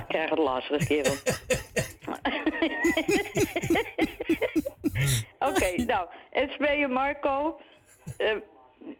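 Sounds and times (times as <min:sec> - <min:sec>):
speech: 0:00.1 - 0:08.9
breathy pulsing sounds: 0:00.8 - 0:02.2, 0:02.8 - 0:05.9
laughter: 0:00.8 - 0:05.9
person coughing: 0:00.8 - 0:05.9, 0:07.9 - 0:08.2.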